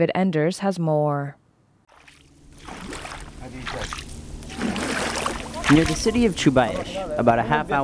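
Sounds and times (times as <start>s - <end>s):
speech: 0.0s - 1.4s, 3.4s - 4.1s, 5.7s - 7.8s
marsh water sloshing as a boy pulls a canoe-like boat near Chubaish Iraq: 1.9s - 7.8s
low rumble: 2.1s - 7.8s.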